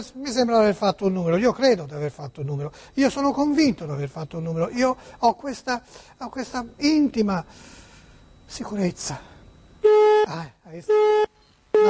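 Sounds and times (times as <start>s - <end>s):
speech: 0.0s - 7.8s, 8.5s - 11.8s
telephone busy signal: 10.9s - 11.8s.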